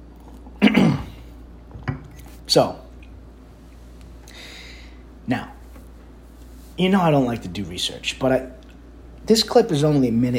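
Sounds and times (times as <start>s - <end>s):
slurping and gulping of coffee and water: 0.0s - 3.2s
speech: 2.5s - 2.8s, 5.3s - 5.6s, 6.8s - 8.6s, 9.3s - 10.3s.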